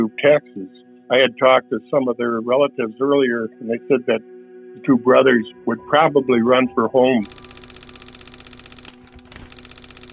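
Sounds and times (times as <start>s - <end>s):
speech: 0.0s - 7.4s
steady teletype motor hum: 7.2s - 10.1s
teletype machine clattering out a message: 7.2s - 10.1s.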